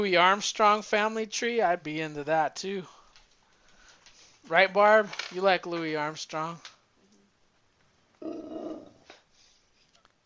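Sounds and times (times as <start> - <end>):
speech: 0.0 - 3.0, 4.4 - 6.7
dog growling: 8.2 - 9.0.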